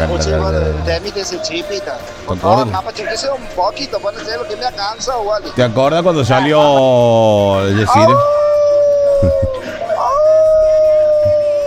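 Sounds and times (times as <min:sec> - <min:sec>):
laughter: 0:00.0 - 0:01.1, 0:06.1 - 0:11.6
speech: 0:00.0 - 0:08.4
person imitating a dog's long howl: 0:07.9 - 0:11.6.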